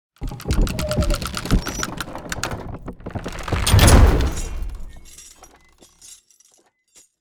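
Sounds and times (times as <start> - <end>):
medieval catapult charging: 0.2 - 5.1
medieval catapult shooting: 0.7 - 5.1.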